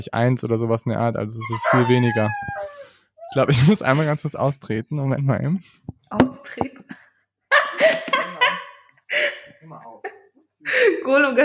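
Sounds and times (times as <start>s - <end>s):
speech: 0.0s - 7.0s, 9.6s - 11.4s
dog barking and yelping: 1.4s - 3.4s
laughter: 7.5s - 10.2s.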